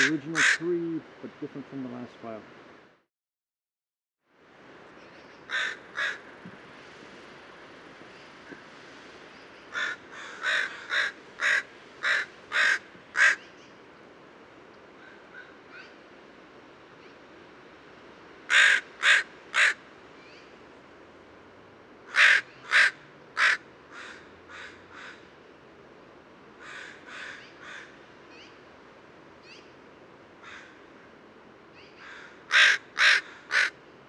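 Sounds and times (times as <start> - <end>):
crow cawing: 0.0 - 0.8, 5.5 - 6.2, 9.7 - 13.4, 18.5 - 19.8, 22.1 - 25.2, 26.6 - 28.0, 30.4 - 30.8, 32.0 - 33.8
speech: 0.0 - 2.6.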